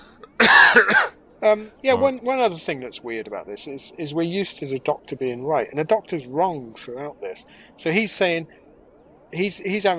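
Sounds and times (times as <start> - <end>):
person coughing loudly: 0.4 - 1.1
speech: 0.8 - 8.6, 9.3 - 9.9.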